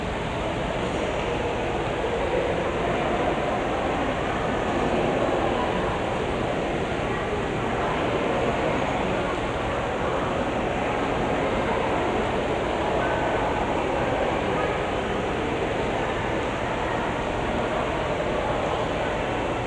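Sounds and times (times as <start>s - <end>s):
murmur of overlapping voices in a busy restaurant at Sunday brunch: 0.0s - 19.6s.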